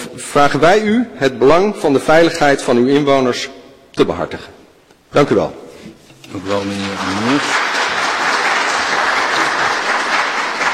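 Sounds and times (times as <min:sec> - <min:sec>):
speech: 0:00.2 - 0:05.6, 0:06.3 - 0:07.6
crowd applauding in a council meeting: 0:06.4 - 0:10.7.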